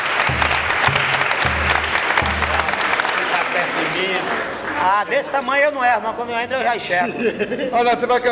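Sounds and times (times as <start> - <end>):
crowd clapping: 0.0 - 5.5
speech: 4.8 - 8.2.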